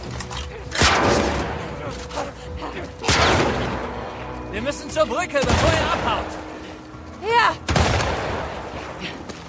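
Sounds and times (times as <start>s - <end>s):
loud shotgun shots: 0.7s - 1.6s, 3.1s - 3.9s, 5.4s - 6.3s, 7.7s - 8.9s
speech: 4.7s - 6.4s, 7.2s - 7.7s.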